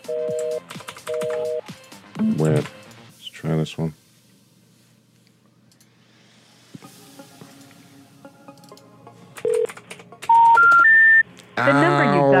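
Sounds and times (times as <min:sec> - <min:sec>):
telephone keypad dialing tones dialing a customer service number: 0:00.0 - 0:01.6, 0:09.4 - 0:09.7, 0:10.3 - 0:11.2
speech: 0:02.4 - 0:02.8, 0:03.6 - 0:04.0.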